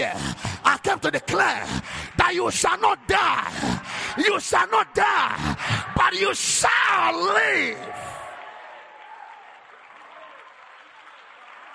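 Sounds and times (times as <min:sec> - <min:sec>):
speech: 0:01.1 - 0:08.1
church audience applauding during a worship service: 0:07.2 - 0:11.7.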